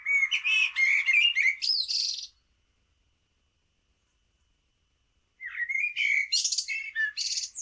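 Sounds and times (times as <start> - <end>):
common blackbird singing: 0.0 - 2.4, 5.4 - 7.6.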